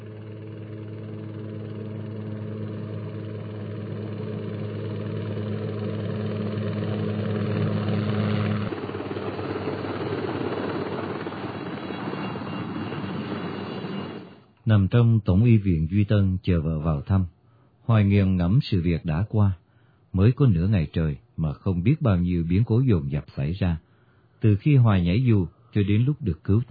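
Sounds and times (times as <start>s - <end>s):
Chinook helicopter flying low over treetops: 0.0s - 14.6s
speech: 14.7s - 23.8s, 24.4s - 26.6s.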